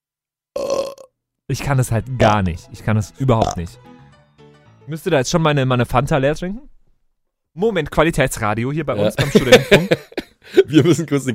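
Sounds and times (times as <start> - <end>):
person burping after swallowing air: 0.6 - 1.2, 3.4 - 3.7
speech: 1.5 - 3.9, 4.9 - 6.7, 7.6 - 11.3
laughter: 9.0 - 11.1.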